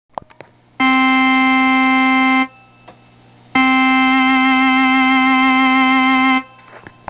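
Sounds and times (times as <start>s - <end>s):
organ with delay and vibrato effect: 0.8s - 2.8s, 3.5s - 7.0s.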